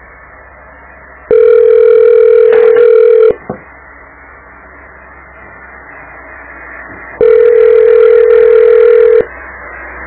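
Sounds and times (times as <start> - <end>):
telephone ringback tones over a quiet line: 1.3 - 3.4, 7.2 - 9.3.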